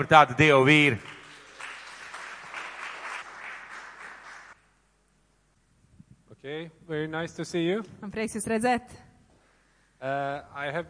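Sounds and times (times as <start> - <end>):
speech: 0.0 - 1.1, 6.4 - 9.1, 10.0 - 10.8
audience applauding welcoming guests: 0.7 - 4.6.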